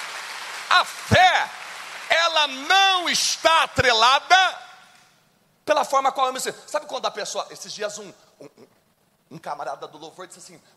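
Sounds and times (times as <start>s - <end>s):
crowd clapping: 0.0s - 2.9s
speech: 0.7s - 1.6s, 2.3s - 4.6s, 5.7s - 8.7s, 9.3s - 10.7s.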